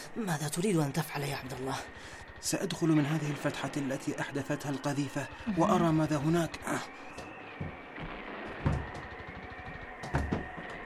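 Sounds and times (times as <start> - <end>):
speech: 0.2 - 7.8
door blocked by stones and bricks being shoved: 7.6 - 10.8.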